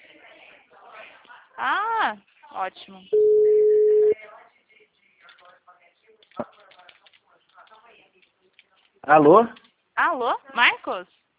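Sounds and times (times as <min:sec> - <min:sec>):
speech: 0:01.6 - 0:03.5, 0:09.1 - 0:11.2
ringback tone of an outgoing telephone call: 0:03.2 - 0:04.2.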